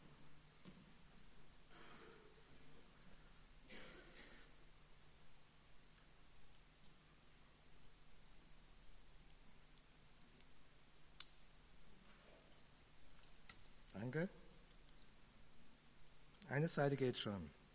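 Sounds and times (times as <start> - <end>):
key unlocking handcuffs with metallic clicks: 12.4 - 15.2
speech: 14.1 - 14.4, 16.5 - 17.6.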